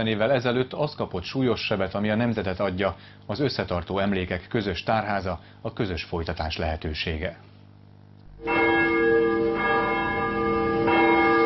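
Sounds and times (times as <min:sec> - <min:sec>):
speech: 0:00.0 - 0:07.5
church bells ringing: 0:08.4 - 0:11.4.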